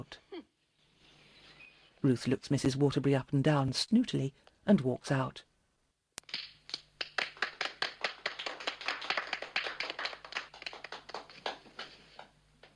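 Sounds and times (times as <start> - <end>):
speech: 0.0 - 0.2, 2.0 - 5.5
small group clapping: 6.2 - 12.7.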